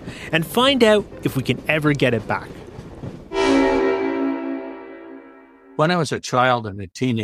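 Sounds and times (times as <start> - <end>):
low rumble of a passing passenger train: 0.0 - 5.2
speech: 0.3 - 2.6, 5.8 - 7.2
loud sustained train horn blast: 3.3 - 5.8.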